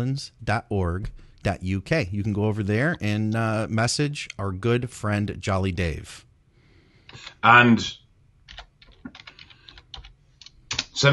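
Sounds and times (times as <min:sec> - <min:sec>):
speech: 0:00.0 - 0:06.3, 0:07.1 - 0:08.0, 0:11.0 - 0:11.1
computer keyboard typing: 0:08.5 - 0:11.0.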